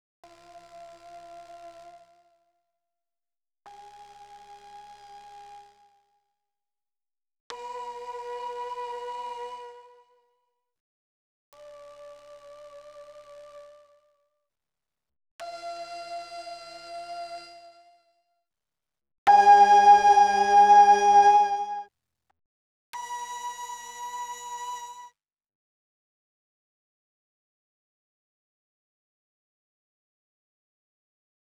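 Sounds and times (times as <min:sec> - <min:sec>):
Mellotron female choir voices: 0:19.3 - 0:21.8.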